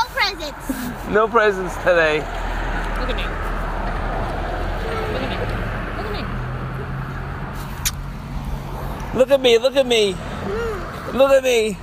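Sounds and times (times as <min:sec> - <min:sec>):
bus heavy engine rumbling: 0:00.0 - 0:11.8
street noise: 0:00.0 - 0:11.8
speech: 0:00.4 - 0:02.4, 0:03.0 - 0:03.5, 0:09.2 - 0:11.8
murmuring voices: 0:04.6 - 0:06.9.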